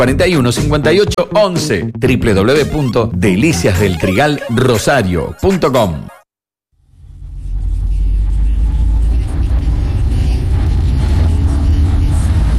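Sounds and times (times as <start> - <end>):
speech: 0.0 - 6.1
heavy low-end car engine rumble in the interior while driving: 6.9 - 12.5.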